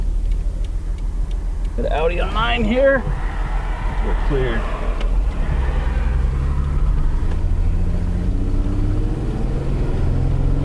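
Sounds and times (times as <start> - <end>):
older V6 truck engine revving and accelerating, heard from inside the cab: 0.0 - 10.6
speech: 1.8 - 3.3, 4.0 - 5.0.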